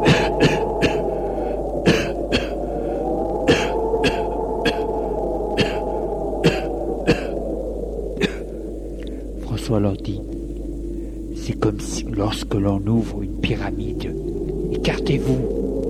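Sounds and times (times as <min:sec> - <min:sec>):
people coughing from white smoke out of an opened tomb: 0:00.0 - 0:01.0, 0:01.9 - 0:02.5, 0:03.5 - 0:04.8, 0:05.6 - 0:07.3, 0:08.2 - 0:08.4
steady low droning hum: 0:00.0 - 0:15.8
speech: 0:11.7 - 0:14.2, 0:14.9 - 0:15.6.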